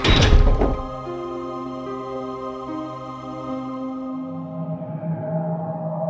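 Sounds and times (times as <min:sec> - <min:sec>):
heavy iron door slamming shut: 0:00.0 - 0:01.1.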